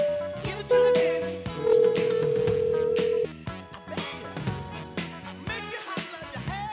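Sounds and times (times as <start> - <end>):
busy music bed: 0.0 - 6.7
telephone dialing and ringing tones: 0.9 - 3.3.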